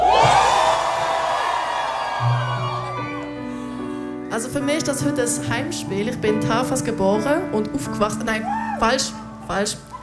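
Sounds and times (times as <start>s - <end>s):
high whoops and shouts: 0.0s - 3.2s, 8.4s - 8.9s
large concert crowd roaring and cheering after a song in rain: 0.0s - 3.6s
speech: 4.5s - 9.9s.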